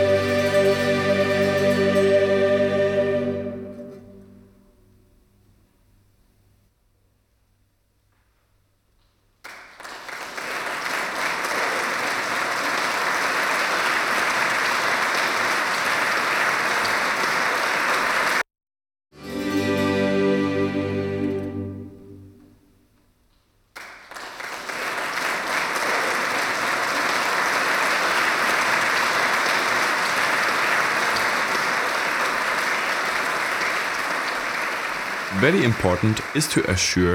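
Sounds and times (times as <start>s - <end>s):
music: 0.0s - 5.4s, 19.2s - 23.0s
concert audience clapping: 9.4s - 18.4s, 23.7s - 37.1s
speech: 35.5s - 37.1s.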